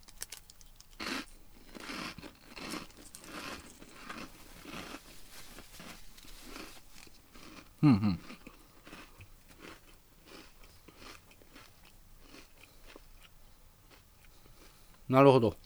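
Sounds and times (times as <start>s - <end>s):
light crinkling: 0.0s - 7.7s
crunching and chewing a salted lemon flavoured snack: 0.0s - 15.0s
speech: 7.8s - 8.4s, 15.1s - 15.6s.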